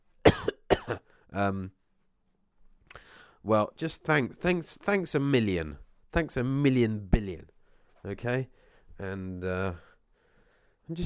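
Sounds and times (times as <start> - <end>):
person coughing sharply: 0.2 - 1.1
short voiced throat-clearing hum: 0.3 - 1.0
speech: 0.9 - 1.8, 3.4 - 9.9, 10.9 - 11.0.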